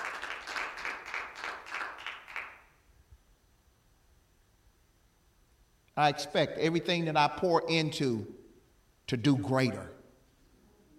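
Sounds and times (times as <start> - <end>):
audience clapping hands during a sermon: 0.0 - 2.8
speech: 6.0 - 8.4, 9.1 - 10.0.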